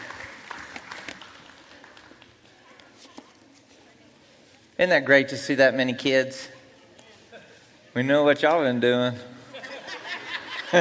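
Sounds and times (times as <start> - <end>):
large crowd applauding in a reverberant room: 0.0 - 2.4
shuffling: 0.8 - 8.6
speech: 4.8 - 6.6, 8.0 - 9.4
laughter: 7.1 - 7.7, 9.4 - 10.7.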